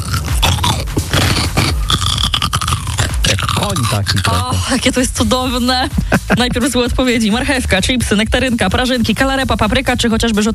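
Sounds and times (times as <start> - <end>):
biting and chewing a pickled cucumber: 0.0 - 4.4
speech: 3.7 - 10.5.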